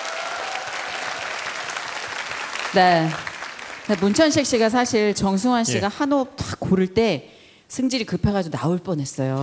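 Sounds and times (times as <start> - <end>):
crowd applauding for a singer: 0.0 - 5.6
speech: 2.7 - 3.3, 3.9 - 9.4.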